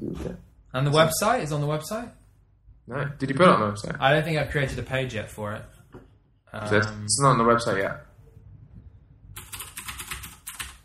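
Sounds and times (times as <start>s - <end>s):
speech: 0.0s - 2.2s, 2.9s - 5.8s, 6.5s - 8.1s
typing on a new loud DAS mechanical keyboard: 9.4s - 10.8s.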